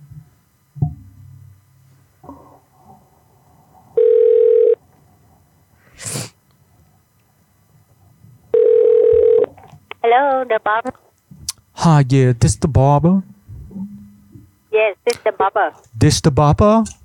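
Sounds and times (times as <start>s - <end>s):
electronic phone line ring tones: 4.0s - 4.8s, 8.5s - 9.5s
speech: 10.2s - 11.0s, 11.8s - 13.3s, 14.8s - 17.0s.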